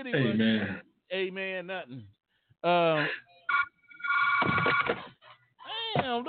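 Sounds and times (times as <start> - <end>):
speech: 0.0 - 3.6, 6.0 - 6.2
office telephone ringing with a bright electronic trill: 3.5 - 4.9.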